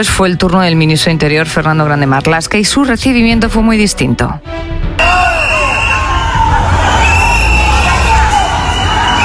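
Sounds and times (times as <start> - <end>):
speech: 0.0 - 5.2
individual raised voices shouting insults: 5.0 - 9.2
large crowd booing and jeering at interior minister in Ceuta: 5.0 - 9.2.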